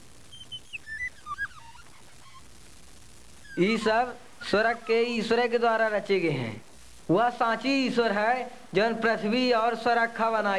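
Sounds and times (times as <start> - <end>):
short high-pitched bird chirps: 0.0 - 2.7, 3.4 - 5.4
speech: 3.6 - 10.5.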